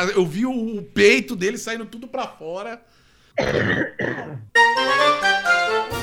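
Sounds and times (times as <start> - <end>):
speech: 0.0 - 6.0
man coughing with strained voiced hacking: 3.4 - 4.6.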